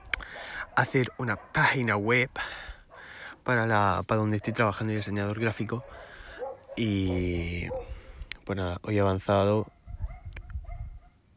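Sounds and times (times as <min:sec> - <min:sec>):
dog barking: 0:00.0 - 0:02.0, 0:02.9 - 0:03.2, 0:04.3 - 0:08.1, 0:09.6 - 0:11.2
speech: 0:00.8 - 0:02.7, 0:03.4 - 0:06.0, 0:06.8 - 0:07.9, 0:08.5 - 0:09.8.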